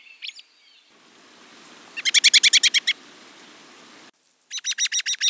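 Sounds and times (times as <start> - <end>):
American robin singing: 0.9 - 4.1.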